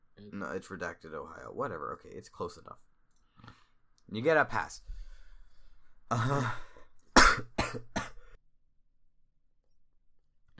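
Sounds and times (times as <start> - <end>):
speech: 0.4 - 5.0, 6.1 - 6.7
brief throaty vocal sound: 6.1 - 7.4
person coughing sharply: 7.2 - 8.3.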